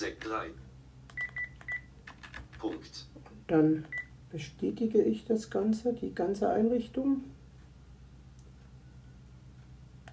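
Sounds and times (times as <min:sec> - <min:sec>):
speech: 0:00.0 - 0:00.7, 0:02.6 - 0:07.4
telephone keypad tones being dialed: 0:01.2 - 0:01.9.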